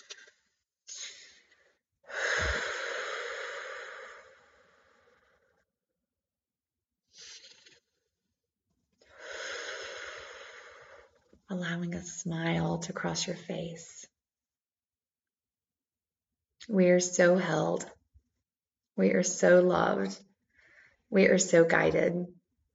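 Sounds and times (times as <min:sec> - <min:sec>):
slow deep breaths during a guided meditation: 0:00.0 - 0:05.6, 0:09.0 - 0:11.2, 0:20.5 - 0:21.1
speech: 0:11.6 - 0:14.1, 0:16.7 - 0:18.0, 0:19.0 - 0:20.3, 0:21.1 - 0:22.4.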